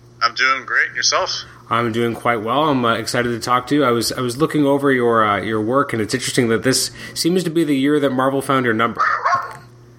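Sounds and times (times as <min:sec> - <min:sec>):
low steady hum: 0:00.0 - 0:09.9
speech: 0:00.2 - 0:09.3
pet dog barking: 0:09.0 - 0:09.7.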